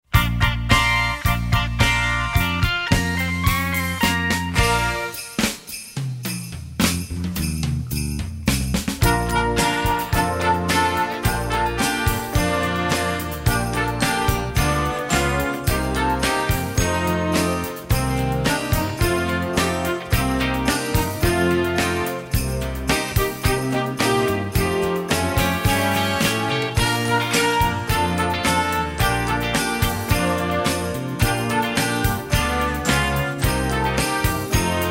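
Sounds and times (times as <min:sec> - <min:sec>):
christmas rock song: 0:00.1 - 0:34.8.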